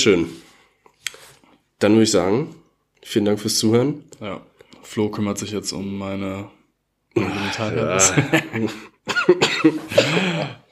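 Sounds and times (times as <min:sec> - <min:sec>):
speech: 0:00.0 - 0:00.4, 0:01.8 - 0:06.6, 0:07.2 - 0:10.6
laughter: 0:07.2 - 0:10.7
harsh throaty coughing fit: 0:09.1 - 0:10.7.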